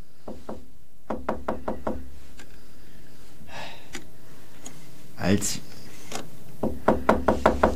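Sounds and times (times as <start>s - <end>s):
knocking on a locked door: 0.3s - 2.1s, 6.6s - 7.7s
speech: 5.3s - 5.7s.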